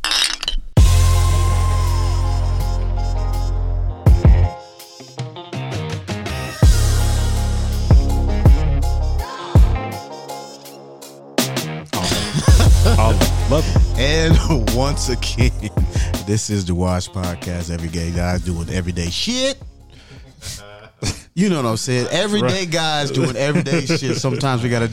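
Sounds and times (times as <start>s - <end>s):
glasses clinking in a toast: 0.0s - 0.7s
deep booming bass bed: 0.8s - 4.5s, 6.6s - 9.8s, 12.4s - 16.2s, 18.2s - 20.0s
laughter: 12.0s - 14.6s, 22.2s - 24.9s
speech: 14.8s - 19.7s, 21.4s - 24.9s.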